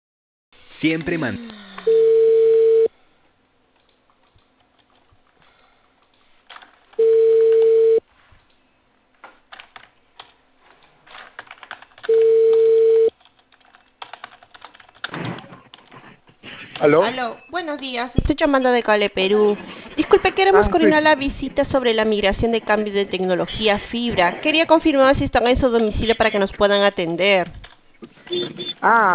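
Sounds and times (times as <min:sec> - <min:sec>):
speech: 0:00.8 - 0:01.6, 0:17.2 - 0:27.6, 0:28.3 - 0:29.1
outgoing phone call ringing tones on the line from a cable company in Peru: 0:01.9 - 0:02.9, 0:07.0 - 0:08.0, 0:12.1 - 0:13.1
light keyboard typing clicks: 0:11.4 - 0:15.1.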